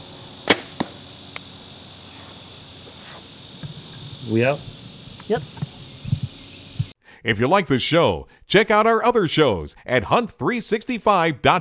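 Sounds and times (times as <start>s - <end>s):
arrow striking a foam 3D buck target: 0.5s - 1.0s
arrow release snap: 0.5s - 1.5s
speech: 4.2s - 4.7s, 5.3s - 5.7s, 7.2s - 11.5s.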